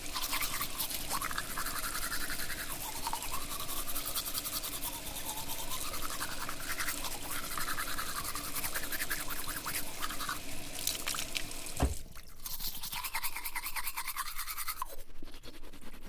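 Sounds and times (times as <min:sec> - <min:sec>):
toothbrush: 0:00.1 - 0:11.2, 0:12.3 - 0:16.0.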